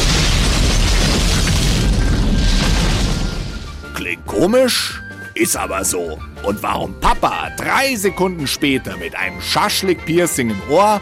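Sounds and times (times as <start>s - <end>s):
petrol-soaked charcoal grill exploding after a lit lighter is thrown onto it: 0.0s - 3.8s
speech: 4.4s - 11.0s.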